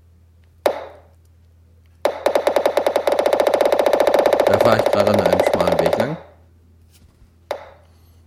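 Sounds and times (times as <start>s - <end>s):
retro video game ball sound effects: 0.6s - 1.1s, 2.0s - 6.3s, 7.5s - 7.8s
speech: 4.7s - 6.3s.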